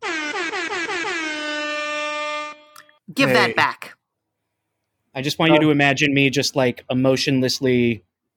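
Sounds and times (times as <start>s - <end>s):
loud air horn blast with stuttering pulses: 0.0s - 2.7s
speech: 3.2s - 4.0s, 5.2s - 8.1s.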